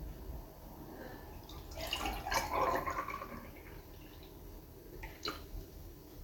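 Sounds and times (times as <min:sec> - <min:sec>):
milk pouring: 0:01.4 - 0:05.6.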